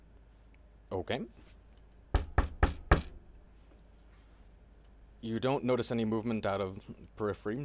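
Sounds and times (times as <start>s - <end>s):
speech: 0.9s - 1.6s, 5.2s - 7.6s
firm knocks on a wooden door: 2.1s - 3.2s.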